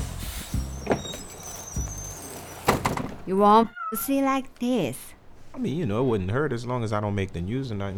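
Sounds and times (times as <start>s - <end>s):
brief hissing clunk of a tour bus pulling up: 0.0s - 3.3s
tour bus engine idling with a low rumble: 0.0s - 3.4s
speech: 3.3s - 7.9s.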